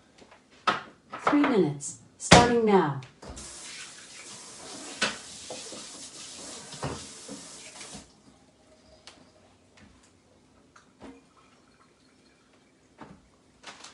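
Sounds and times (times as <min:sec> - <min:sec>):
speech: 0:01.3 - 0:03.1
batter sizzling in a mini waffle maker: 0:03.4 - 0:08.1.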